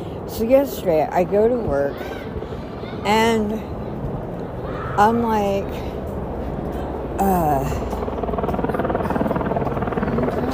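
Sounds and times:
speech: 0.3 - 2.2, 3.0 - 3.7, 5.0 - 5.9, 7.2 - 7.9
helicopter flying overhead with rotor chopping: 5.9 - 10.5.

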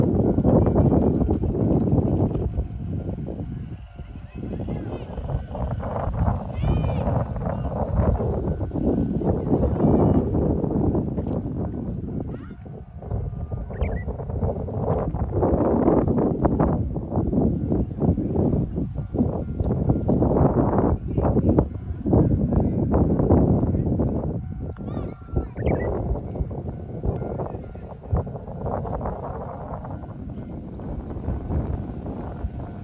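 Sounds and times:
wind on a riverbank: 0.0 - 32.8
Japanese bush warbler singing on a riverbank: 2.1 - 2.8, 12.6 - 14.1, 18.2 - 20.3, 24.0 - 26.2, 30.2 - 31.6.

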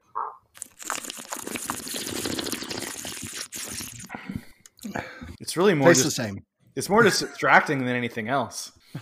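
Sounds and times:
people slurping beer to aerate it: 0.6 - 5.4
speech: 5.5 - 9.0.

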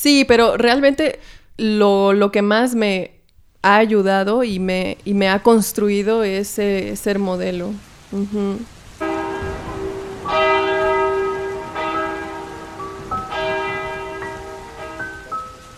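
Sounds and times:
speech: 0.0 - 8.8
soft rain-like hiss: 0.0 - 15.7
distant church bells ringing: 9.0 - 15.7.

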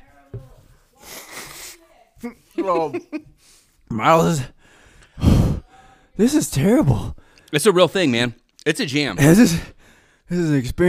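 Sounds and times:
single forceful nose blow: 1.0 - 1.8, 5.2 - 5.7
speech: 2.2 - 3.3, 3.9 - 4.6, 6.2 - 10.8
laughter: 2.2 - 3.4.

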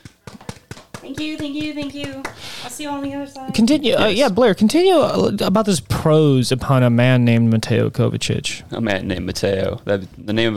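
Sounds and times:
sharp hand claps as a send-off for someone leaving for a job interview: 0.0 - 2.7
speech: 1.0 - 10.5.

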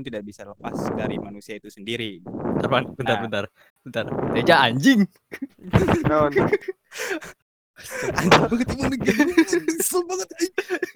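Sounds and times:
speech: 0.0 - 10.9
laughter: 5.4 - 10.9
rough breathy exhalations against the microphone: 6.9 - 8.3.

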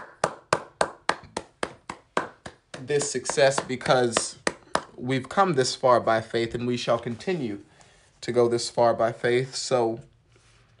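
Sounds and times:
single person clapping at a leadership summit fireside chat: 0.0 - 5.0
speech: 2.8 - 4.4, 5.0 - 10.1.

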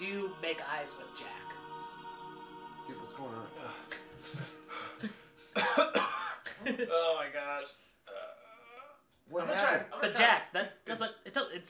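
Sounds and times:
speech: 0.0 - 1.6, 2.9 - 7.8, 9.3 - 11.6
person coughing: 4.3 - 6.6.

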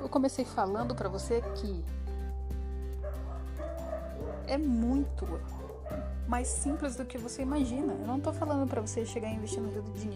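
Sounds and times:
speech: 0.1 - 2.0, 4.5 - 5.6, 6.3 - 10.1
dogs barking: 1.2 - 1.9, 2.9 - 7.3.

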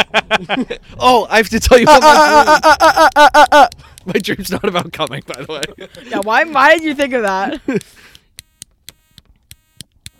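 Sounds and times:
laughter: 0.0 - 0.9, 1.6 - 8.0
speech: 0.0 - 8.1
sharp clicks: 2.7 - 10.1
electric buzz from a switched-on device: 8.4 - 10.1.

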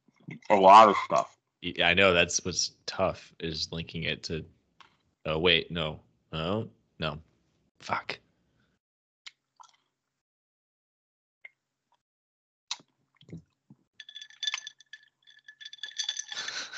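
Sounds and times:
speech: 0.5 - 4.6, 5.2 - 8.2
vodka bottle clinking and rattling against a glass: 14.0 - 16.7.

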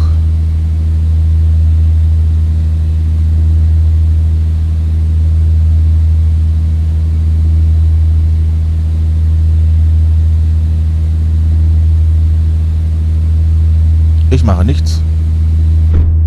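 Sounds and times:
flight simulator game airplane engine drone during landing: 0.0 - 16.2
speech: 14.4 - 15.1.

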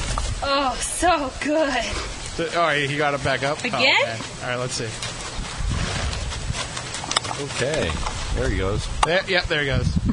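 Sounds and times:
speech: 0.4 - 5.2, 7.4 - 10.1
horse passing gas: 5.5 - 6.9.

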